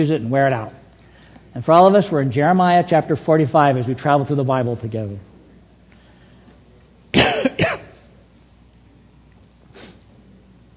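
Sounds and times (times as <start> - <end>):
speech: 0.0 - 0.8, 1.5 - 5.3
person coughing: 7.2 - 8.1.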